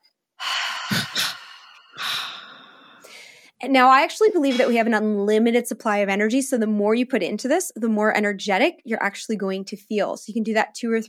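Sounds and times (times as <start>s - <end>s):
strong breathy double exhale through nose and mouth: 0.4s - 3.5s
double inhale through nose and mouth in a breathing exercise: 0.4s - 3.6s
speech: 3.6s - 11.0s.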